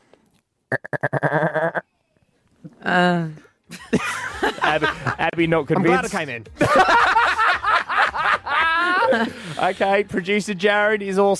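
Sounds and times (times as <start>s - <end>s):
person imitating a goat bleating: 0.7s - 1.8s
laughter: 3.7s - 10.3s
speech: 5.4s - 7.1s, 9.1s - 11.3s.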